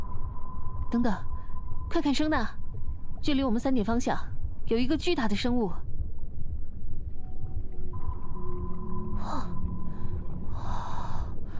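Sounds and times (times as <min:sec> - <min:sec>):
deep underwater rumbling background: 0:00.0 - 0:11.5
speech: 0:00.9 - 0:01.3, 0:01.9 - 0:02.6, 0:03.2 - 0:05.8
whale call moaning underwater: 0:09.0 - 0:11.5.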